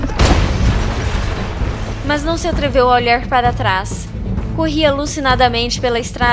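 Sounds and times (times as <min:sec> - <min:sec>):
loud explosion: 0:00.0 - 0:03.1
deep continuous rumble: 0:00.0 - 0:06.3
speech: 0:02.1 - 0:06.3.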